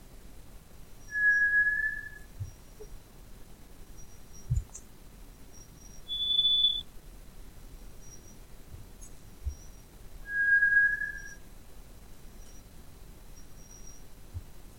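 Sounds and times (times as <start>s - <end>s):
faint high insect-like tones: 1.0s - 3.0s, 3.9s - 6.8s, 8.0s - 11.4s, 12.4s - 12.7s, 13.3s - 14.1s
White's thrush whistling slow drawn-out single notes: 1.1s - 2.8s, 5.6s - 6.8s, 9.5s - 11.4s.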